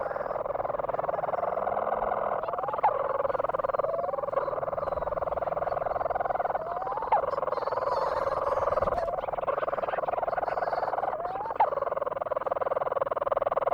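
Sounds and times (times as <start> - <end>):
Leach's storm-petrel giving a long buzzy purr: 0.0 - 13.7.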